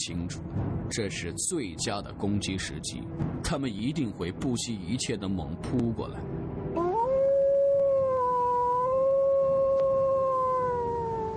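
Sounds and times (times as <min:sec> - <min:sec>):
speech: 0:00.0 - 0:06.4
wolf howling from high ground: 0:06.8 - 0:11.3.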